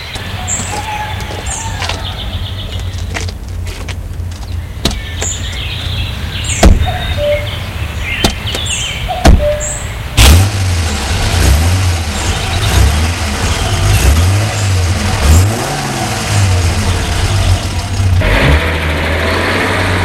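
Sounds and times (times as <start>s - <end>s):
birds chirping: 0.0s - 10.2s, 10.9s - 15.6s, 16.3s - 18.2s
steady low outdoor rumble: 0.1s - 20.0s
rear door of a large black car opening and closing: 6.5s - 7.4s, 8.2s - 9.8s.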